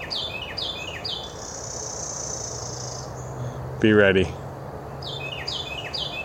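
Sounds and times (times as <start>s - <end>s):
sustained high trilling bird call: 0.0s - 3.6s, 4.9s - 6.2s
bird chirping overhead in Franklin Massachusetts: 0.0s - 6.2s
speech: 3.8s - 4.4s.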